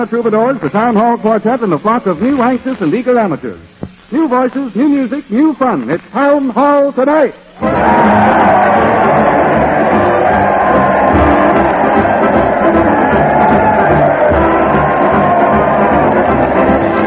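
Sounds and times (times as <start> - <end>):
speech: 0.0 - 9.2
large crowd cheering in the streets: 7.6 - 17.0.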